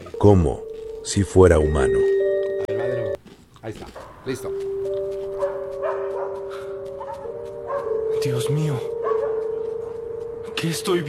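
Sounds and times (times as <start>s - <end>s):
speech: 0.2s - 2.2s, 3.6s - 5.0s, 8.2s - 9.0s, 10.6s - 11.0s
dog barking in a played video through a small speaker: 5.4s - 6.4s, 7.0s - 8.0s, 9.0s - 9.6s.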